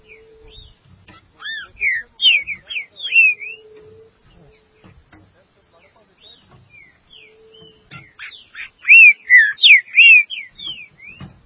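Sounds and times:
Green-winged saltator whistled song with soft clicks: 0.0 - 4.9, 6.2 - 11.4.

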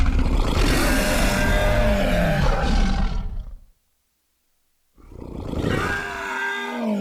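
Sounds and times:
fictional creature roar blended from a human actor, a bear and a tiger: 0.0 - 3.7, 5.1 - 7.0.

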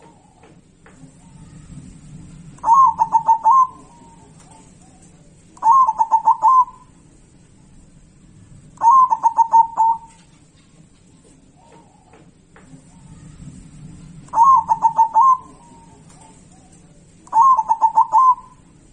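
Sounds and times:
zebra dove song rolling staccato cooing: 0.0 - 7.0, 8.8 - 18.8.

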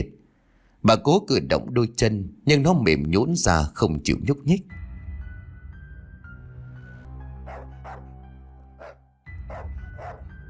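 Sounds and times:
speech: 0.8 - 4.8
low droning horror drama music: 4.7 - 10.4
black dog barking: 7.4 - 8.2, 8.8 - 10.3.

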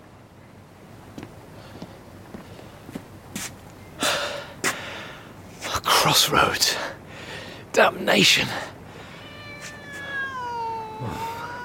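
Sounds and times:
speech: 6.0 - 6.9, 7.8 - 8.7
drawn-out cat meow: 9.0 - 11.6.

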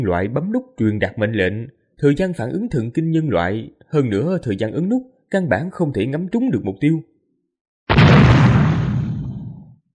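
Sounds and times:
speech: 0.0 - 7.1
artillery shell over 100mm in caliber exploding on the front line: 7.9 - 9.7.

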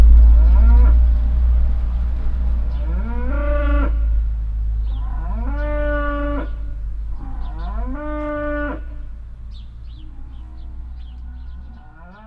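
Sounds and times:
cars passing: 0.0 - 12.2
small birds chirping: 0.0 - 12.2
cow mooing loudly at a farmstead in Heiderscheid: 0.4 - 1.0, 2.7 - 4.2, 4.9 - 9.2, 10.0 - 12.2
other cows answering with quieter moos: 2.7 - 12.2.

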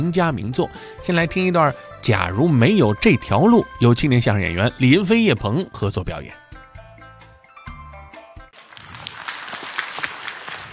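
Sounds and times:
speech: 0.0 - 6.4
audience applause at a crosstalk comedy performance: 8.6 - 10.7.

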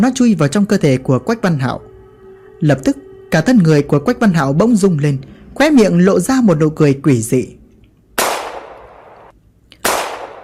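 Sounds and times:
speech: 0.0 - 1.9, 2.6 - 7.6
gunshots: 8.2 - 10.4.

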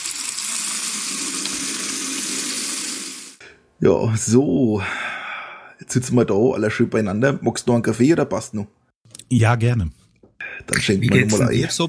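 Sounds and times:
hands washed under a running tap: 0.0 - 3.4
speech: 3.8 - 5.2, 5.8 - 11.8.

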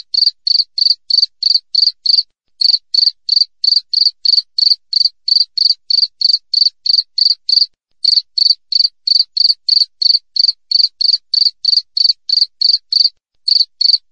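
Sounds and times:
cricket chirping in rapid high even pulses: 0.0 - 14.1.

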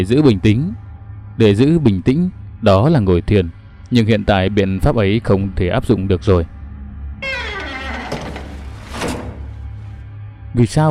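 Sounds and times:
speech: 0.0 - 0.8, 1.4 - 6.5, 10.6 - 10.8
sharp knocks and rattles: 7.2 - 9.9
wardrobe door swinging open on its own: 7.2 - 10.0.

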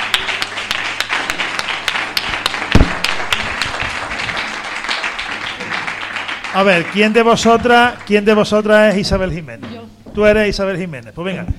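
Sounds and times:
live studio audience applause: 0.0 - 8.9
speech: 6.6 - 11.5.

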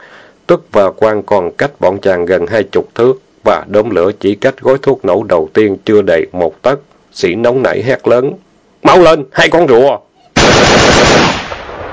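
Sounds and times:
speech: 0.5 - 11.4
machine gun and submachine gun fire in a combat ambush: 10.4 - 11.9.

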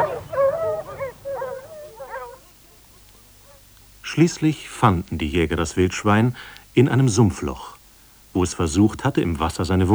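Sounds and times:
hunting dogs yelping and whimpering while chasing a wounded wild boar: 0.0 - 3.6
speech: 4.2 - 7.7, 8.4 - 9.9.

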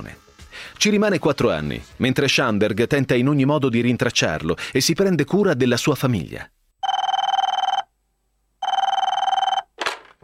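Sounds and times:
speech: 0.8 - 6.6
old-style telephone bell ringing: 6.8 - 7.9, 8.6 - 9.8.

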